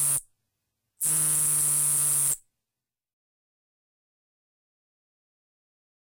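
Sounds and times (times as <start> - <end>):
Nebraska conehead katydid Neoconocephalus nebrascensis buzzing: 0.0 - 0.2, 1.0 - 2.4.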